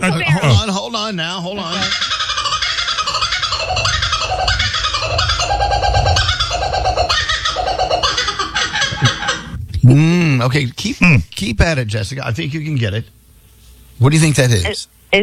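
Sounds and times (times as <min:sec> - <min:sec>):
speech: 0:00.0 - 0:02.2, 0:09.9 - 0:13.2, 0:14.0 - 0:15.2
Australian kookaburra raucous laughing call: 0:01.5 - 0:09.6.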